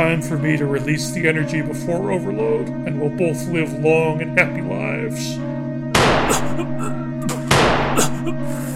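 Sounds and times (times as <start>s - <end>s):
speech: 0.0s - 5.6s, 6.2s - 7.1s, 8.0s - 8.7s
gunshots fired at a person's ankles: 6.0s - 6.6s, 7.4s - 8.2s.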